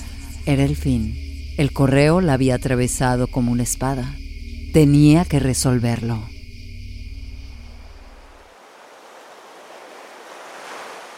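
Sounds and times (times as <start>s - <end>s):
speech: 0.4s - 6.3s
ocean waves washing onto a shore: 8.1s - 11.1s.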